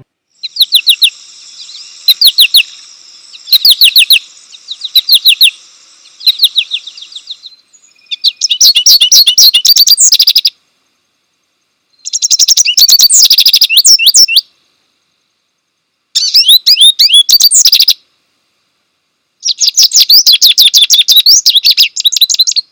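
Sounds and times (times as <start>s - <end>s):
American goldfinch calls and song: 0.4s - 10.5s, 12.0s - 14.5s, 16.2s - 18.0s, 19.4s - 22.7s.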